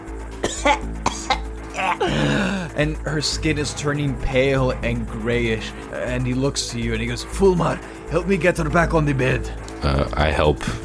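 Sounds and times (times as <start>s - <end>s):
person acting out a woman coughing up blood: 0.4s - 2.7s
speech: 2.0s - 10.8s.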